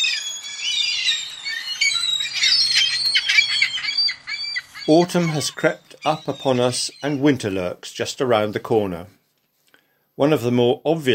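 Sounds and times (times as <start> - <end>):
gulls calling in a raucous chorus: 0.0 - 7.8
speech: 4.8 - 9.2, 10.2 - 11.1.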